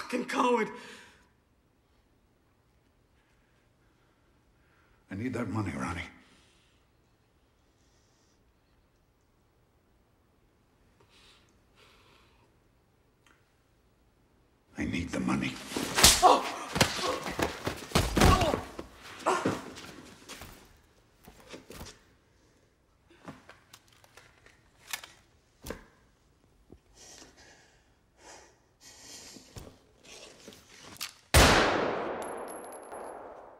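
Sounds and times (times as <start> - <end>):
speech: 0.1 - 1.1, 5.1 - 6.2, 14.8 - 16.6
scuffle of heavy thuds and clattering impacts: 15.6 - 20.6
single loud gunshot: 31.4 - 33.5.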